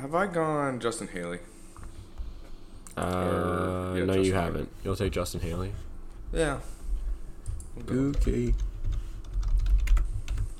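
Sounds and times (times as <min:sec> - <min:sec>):
speech: 0:00.0 - 0:01.6, 0:03.0 - 0:06.8, 0:07.8 - 0:08.7
typing on a computer keyboard: 0:07.5 - 0:10.5.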